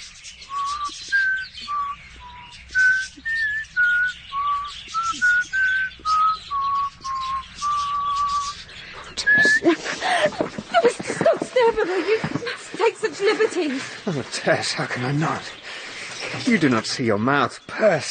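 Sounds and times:
person whistling a halting tune: 0:00.5 - 0:08.5, 0:09.2 - 0:09.7
laughter: 0:09.2 - 0:16.9
speech: 0:13.6 - 0:15.6, 0:16.4 - 0:18.0.

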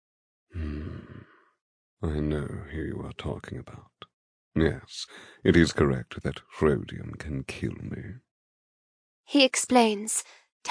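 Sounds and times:
man taking a deep breath and sighing: 0:00.6 - 0:01.3
speech: 0:02.0 - 0:04.0, 0:04.6 - 0:08.2, 0:09.3 - 0:10.6.

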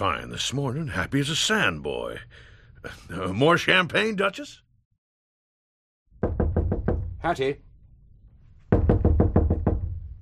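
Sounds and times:
speech: 0:00.0 - 0:04.6, 0:07.2 - 0:07.7
loud rapid knocking on a door: 0:06.1 - 0:07.4, 0:08.7 - 0:10.2.

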